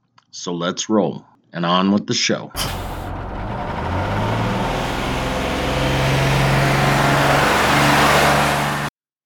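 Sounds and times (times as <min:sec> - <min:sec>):
speech: 0:00.4 - 0:02.8
heavy bus engine revving as the bus pulls away: 0:02.6 - 0:08.9.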